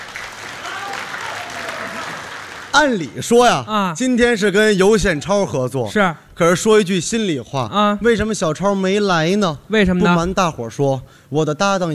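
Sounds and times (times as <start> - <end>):
live audience applause at a traditional crosstalk comedy show: 0.0 - 3.2
speech: 2.8 - 11.9.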